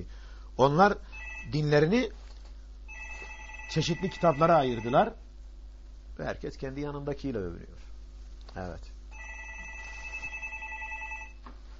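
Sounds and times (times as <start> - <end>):
low constant hum: 0.0 - 11.7
speech: 0.6 - 2.2, 3.7 - 5.2, 6.2 - 7.9, 8.5 - 8.9
telephone ringing: 1.0 - 1.9, 2.9 - 5.2, 9.1 - 11.4.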